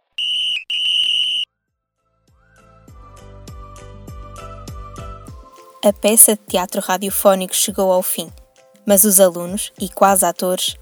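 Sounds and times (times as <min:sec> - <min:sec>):
referee's whistle at a football game: 0:00.0 - 0:01.5
speech: 0:05.8 - 0:10.8.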